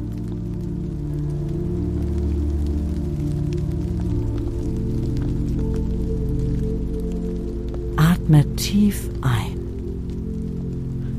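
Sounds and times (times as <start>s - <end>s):
summer rain on sun-warmed asphalt: 0.0s - 11.1s
speech: 8.3s - 9.5s.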